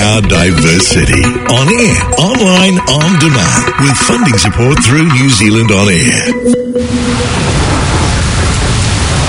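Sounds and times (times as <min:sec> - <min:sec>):
speech: 0:00.1 - 0:08.0
heavy rain pouring down: 0:06.8 - 0:09.2.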